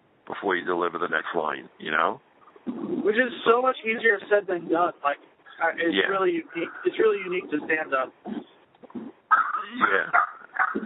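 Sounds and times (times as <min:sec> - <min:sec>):
speech: 0:00.4 - 0:08.5, 0:09.7 - 0:10.2
dog whimpering: 0:08.3 - 0:10.8.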